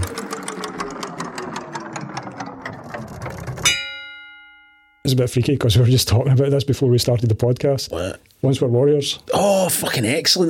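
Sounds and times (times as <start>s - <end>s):
online random picker wheel spinning: 0.0s - 4.1s
bright ringing chime: 3.6s - 5.4s
speech: 5.1s - 10.4s.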